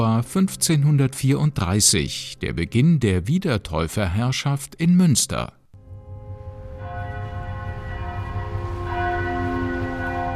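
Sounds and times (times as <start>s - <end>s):
speech: 0.0s - 5.6s
church bells ringing in a rich overlapping peal: 5.8s - 10.3s.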